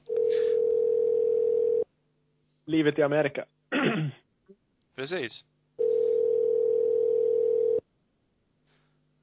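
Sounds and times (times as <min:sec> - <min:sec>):
ringback tones of an outgoing phone call: 0:00.1 - 0:01.8, 0:05.8 - 0:07.8
speech: 0:02.7 - 0:04.2, 0:05.0 - 0:05.5
person clearing throat: 0:03.7 - 0:04.2.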